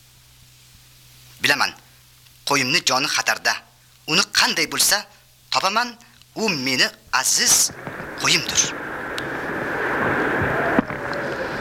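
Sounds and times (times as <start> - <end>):
speech: 1.4 - 1.8, 2.5 - 8.8
windstorm howling on a dark night in the mountains: 7.2 - 11.6.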